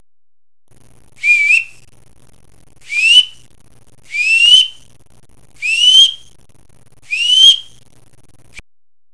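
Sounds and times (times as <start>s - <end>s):
whistles: 1.2s - 1.8s, 2.8s - 3.4s, 4.1s - 4.9s, 5.6s - 6.3s, 7.1s - 7.8s.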